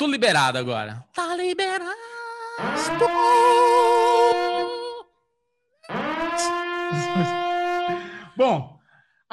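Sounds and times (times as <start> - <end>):
speech: 0.0 - 4.8, 5.9 - 7.4, 8.4 - 8.7
synthetic electronic siren sound effect wail: 2.6 - 4.9, 5.8 - 8.1
laughter: 6.8 - 8.0.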